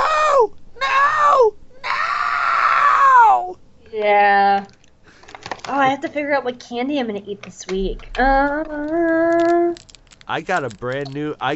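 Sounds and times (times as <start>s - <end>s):
voice imitating a droid screaming: 0.0s - 3.6s
speech: 6.1s - 11.5s.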